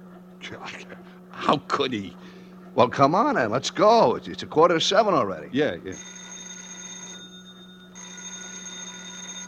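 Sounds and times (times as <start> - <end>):
speech: 0.5 - 6.2
telephone ringing with a metallic trill: 5.9 - 9.4.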